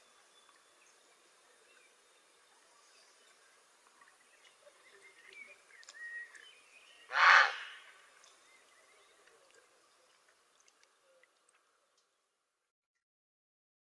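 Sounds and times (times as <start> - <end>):
grey heron croaking: 7.1 - 7.9.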